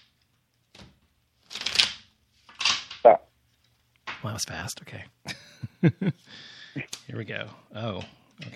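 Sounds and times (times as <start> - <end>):
deck of tarot cards being shuffled: 1.4 - 2.9
speech: 4.4 - 8.5.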